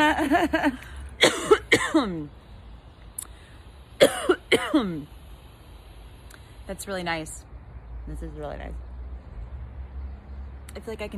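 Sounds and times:
speech: 0.2 - 2.4, 4.5 - 5.2, 6.7 - 7.5, 8.1 - 8.9, 10.8 - 11.1
person coughing after inhaling vape: 1.2 - 2.2, 4.0 - 5.0.

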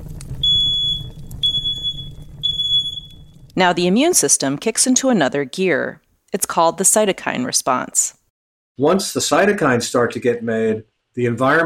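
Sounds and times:
faint low rumble: 0.0 - 4.6
smoke alarm beeping: 0.4 - 3.5
speech: 3.6 - 8.2, 8.8 - 11.6.

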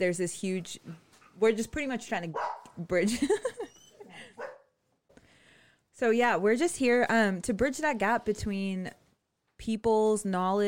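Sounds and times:
speech: 0.0 - 3.6, 6.0 - 9.0, 9.6 - 10.6
dog barking: 2.3 - 2.8, 4.2 - 4.8.

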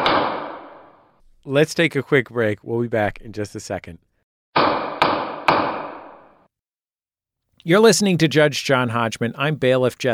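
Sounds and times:
gavel strike: 0.0 - 1.1, 4.6 - 6.5
speech: 1.5 - 4.1, 7.6 - 10.1.

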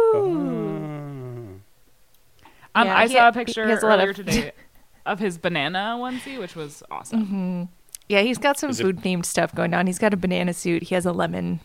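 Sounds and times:
baby boy wailing yell in another room: 0.0 - 0.8
speech: 2.8 - 11.6.

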